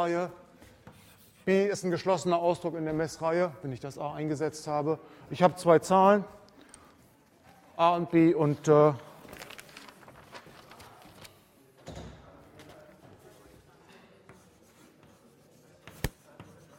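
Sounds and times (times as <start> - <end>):
speech: 0.0 - 0.4, 1.5 - 6.4, 7.8 - 9.1
writing on a board during a maths lecture: 0.6 - 1.5, 13.1 - 16.7.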